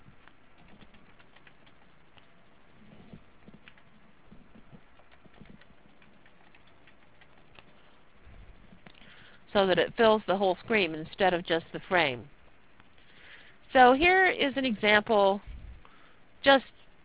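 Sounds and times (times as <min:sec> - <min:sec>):
fingers typing on a computer keyboard: 0:00.0 - 0:08.0
speech: 0:09.6 - 0:12.4, 0:13.7 - 0:15.5, 0:16.4 - 0:16.7.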